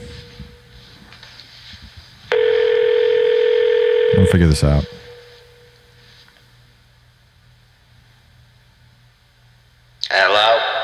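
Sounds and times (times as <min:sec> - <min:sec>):
telephone dial tone while placing a call: 0:02.4 - 0:04.2
speech: 0:04.2 - 0:05.0.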